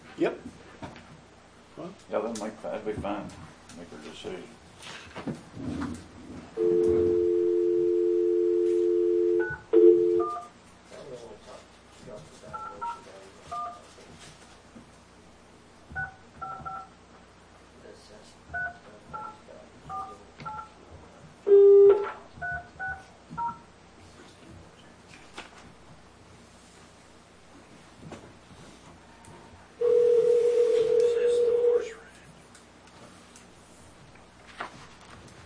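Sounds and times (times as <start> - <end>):
speech: 0.2 - 0.5, 2.2 - 6.0
telephone dial tone: 6.6 - 10.4, 21.5 - 22.2, 29.8 - 31.9
telephone keypad beeps as a number is punched in: 16.0 - 16.9, 21.8 - 23.6.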